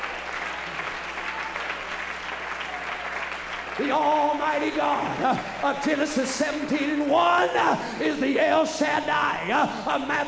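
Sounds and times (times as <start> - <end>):
church audience clapping hands: 0.0 - 7.0
speech: 3.8 - 10.2.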